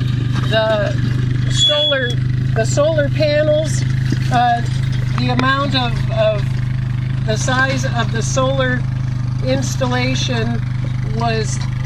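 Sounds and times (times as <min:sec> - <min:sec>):
brief higher tonal whine: 0:00.0 - 0:11.8
gasoline engine running: 0:00.0 - 0:11.8
speech: 0:00.5 - 0:06.6, 0:07.2 - 0:11.7.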